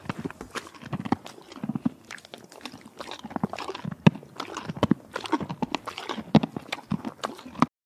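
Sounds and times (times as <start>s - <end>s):
horse eating apples and carrots: 0.0s - 7.7s.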